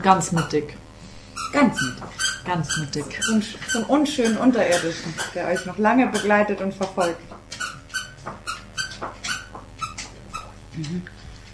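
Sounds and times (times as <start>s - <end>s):
speech: 0.0s - 0.8s, 1.4s - 7.4s, 10.8s - 11.2s
dog chewing a squeaky toy elk: 1.2s - 6.4s, 7.4s - 10.6s.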